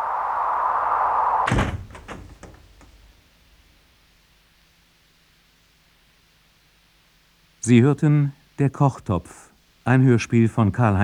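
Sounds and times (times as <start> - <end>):
apartment door shut in a hurry: 0.0 - 3.2
steady humming tone: 0.0 - 3.9
faint clicks and rattles of a settling door: 1.5 - 3.2
speech: 7.7 - 11.0.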